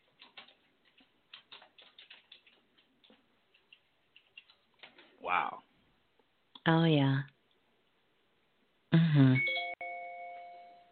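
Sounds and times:
speech: 6.7 - 7.3, 9.2 - 9.5
doorbell chiming: 9.4 - 10.8.

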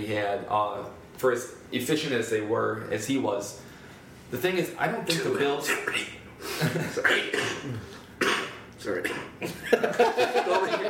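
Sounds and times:
speech: 0.0 - 3.7, 4.3 - 7.9, 8.8 - 10.8
person coughing, recovering from a serious cough: 6.6 - 9.6
throat clearing: 6.8 - 9.5
laughter: 9.5 - 10.8.

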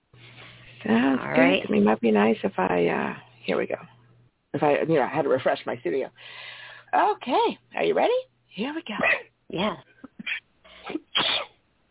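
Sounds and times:
speech: 0.8 - 10.4
person sneezing: 10.2 - 11.6.

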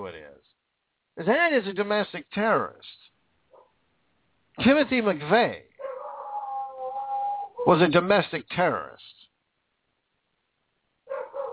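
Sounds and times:
speech: 1.2 - 2.9, 4.6 - 5.7, 7.6 - 9.1
dog barking: 3.5 - 3.7, 5.8 - 7.1, 11.1 - 11.5.

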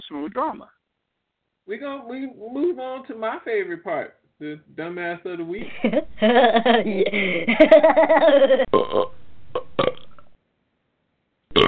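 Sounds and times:
speech: 0.1 - 0.8, 1.7 - 9.2
person laughing and snickering: 5.6 - 8.7
long drawn-out burp: 8.7 - 10.2.

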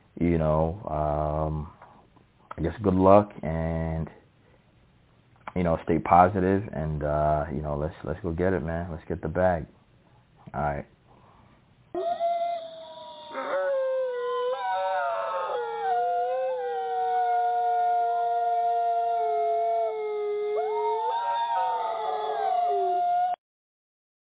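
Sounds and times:
speech: 0.2 - 1.8, 2.6 - 4.2, 5.5 - 9.8, 10.5 - 11.0
several wolves howling in chorus: 12.0 - 23.4.

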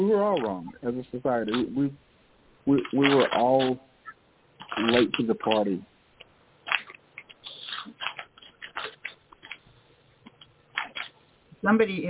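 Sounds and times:
speech: 0.0 - 2.0, 2.6 - 3.9, 4.7 - 5.9, 11.6 - 12.0
paper scratching and rustling: 4.6 - 5.8, 6.7 - 9.6, 10.7 - 11.2.

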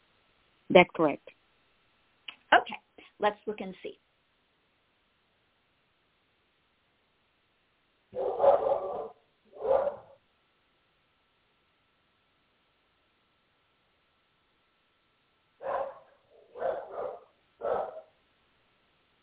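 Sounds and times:
speech: 0.7 - 1.4, 2.5 - 4.0
dog barking at someone at the door: 8.2 - 10.2, 15.6 - 18.2.

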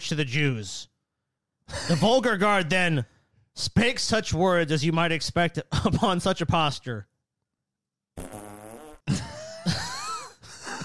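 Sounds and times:
speech: 0.1 - 0.9, 1.7 - 7.1
fart sound effect: 8.2 - 9.1.

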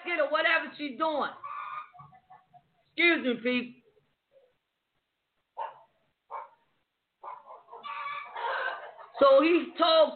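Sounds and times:
speech: 0.3 - 1.5, 3.0 - 3.8, 9.2 - 10.1
chickens squawking and clucking: 1.4 - 2.8, 7.2 - 9.6
roosters crowing: 7.2 - 9.2.

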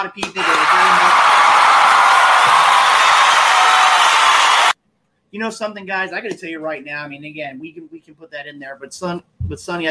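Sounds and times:
speech: 0.0 - 1.2, 5.4 - 9.8
crowd applause and cheering with whoops: 0.2 - 4.8.

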